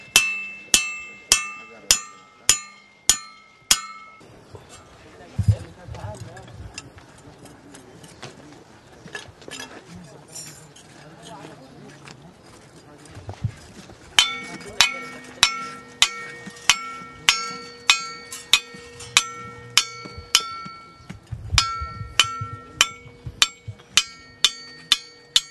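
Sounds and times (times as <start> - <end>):
hammers in Egypt: 0.0 - 4.2, 14.2 - 25.4.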